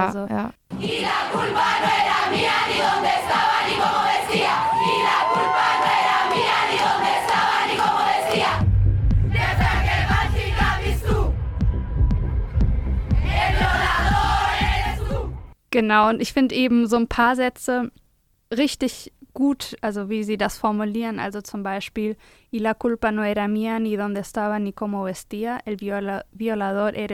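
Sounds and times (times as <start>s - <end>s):
speech: 0.0s - 3.5s, 15.8s - 27.1s
large crowd chanting in unison at feminist protest performance: 0.7s - 8.6s, 9.3s - 11.6s, 13.2s - 15.5s
deep drumming pulse: 0.7s - 15.4s.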